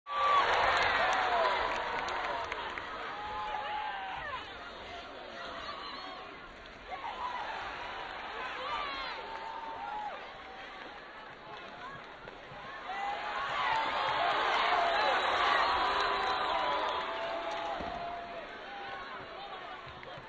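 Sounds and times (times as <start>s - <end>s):
hockey crowd ovation: 0.1s - 20.2s.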